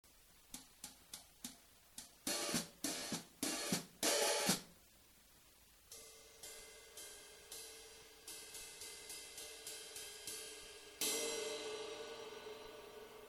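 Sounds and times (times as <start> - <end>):
cymbal played with brushes: 2.3 - 4.6, 5.9 - 13.2.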